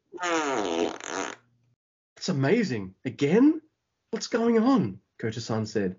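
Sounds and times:
loud drawn-out buzzing fart: 0.1s - 1.5s
speech: 0.2s - 1.1s, 2.3s - 5.9s.

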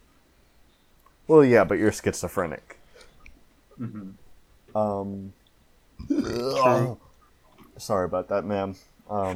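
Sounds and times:
speech: 1.3s - 2.8s, 3.8s - 5.4s, 6.0s - 7.0s, 7.8s - 9.3s
long deep voiced burp: 6.0s - 6.9s.

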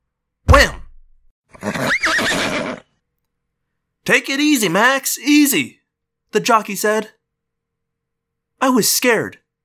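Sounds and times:
stallion whinnying in a wooden starting gate: 1.5s - 3.0s
speech: 4.0s - 7.2s, 8.6s - 9.4s.

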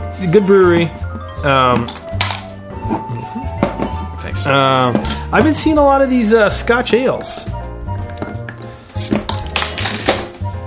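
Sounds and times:
speech: 0.2s - 2.2s, 2.9s - 3.4s, 4.3s - 7.6s
glasses clinking together in a toast: 1.2s - 5.6s, 8.1s - 10.3s.

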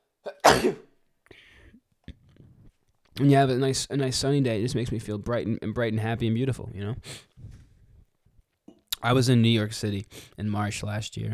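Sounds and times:
speech: 0.2s - 0.9s, 3.2s - 7.3s, 9.0s - 11.3s
person sneezing: 0.3s - 0.8s
quiet breathing: 1.2s - 2.8s, 7.0s - 8.2s, 10.0s - 10.4s
faint sniff: 7.0s - 8.0s.

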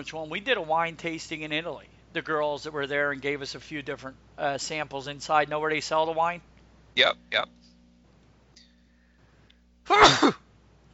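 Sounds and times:
speech: 0.0s - 7.6s, 9.9s - 10.4s
loud sneeze: 9.9s - 10.5s.

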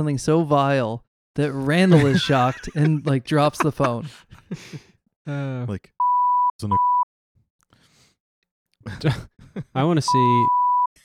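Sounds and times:
speech: 0.0s - 5.9s, 6.6s - 6.9s, 8.8s - 10.6s
laughter: 1.6s - 4.9s
high-pitched censor bleep masking a spoken word: 6.0s - 7.1s, 10.1s - 10.9s.

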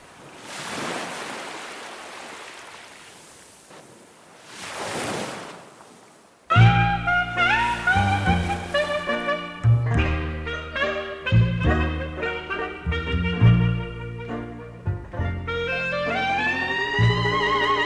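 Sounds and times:
ocean surf washing in and receding on a beach: 0.0s - 9.6s
gentle melodic music with sustained tones: 6.5s - 17.8s.

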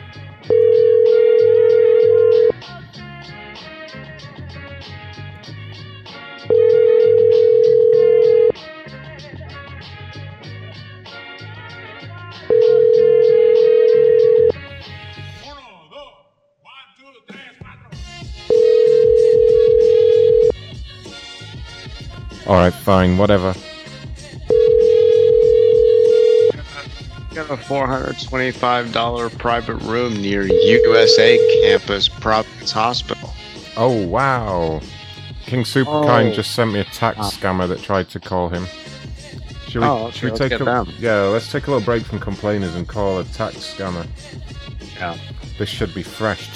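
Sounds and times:
music: 0.0s - 15.7s, 17.3s - 46.5s
telephone line ringing with long electronic tones: 0.5s - 2.6s, 6.5s - 8.5s, 12.5s - 14.6s, 18.5s - 20.6s, 24.5s - 26.6s, 30.4s - 31.8s
speech: 22.9s - 23.7s, 27.4s - 33.2s, 33.8s - 38.8s, 39.7s - 46.5s.

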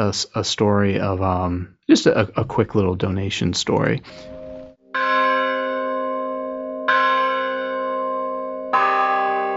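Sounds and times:
speech: 0.0s - 4.4s
church bells tuned to C and G struck with sticks: 4.1s - 9.5s.

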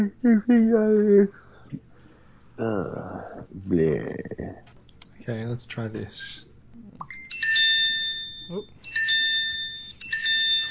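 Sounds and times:
speech: 0.0s - 1.8s, 2.6s - 4.7s, 5.3s - 6.5s, 8.5s - 8.8s
quiet noise: 0.0s - 10.6s
small bell ringing: 7.1s - 10.6s.

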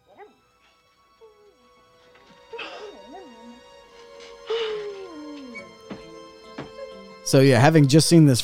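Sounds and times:
dog whimpering and whining in distress: 0.1s - 1.6s, 2.3s - 7.0s
speech: 7.3s - 8.4s.

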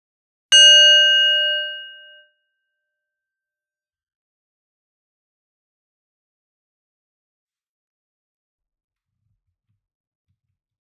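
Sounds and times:
single bell strike with bright metallic tone: 0.5s - 2.2s.

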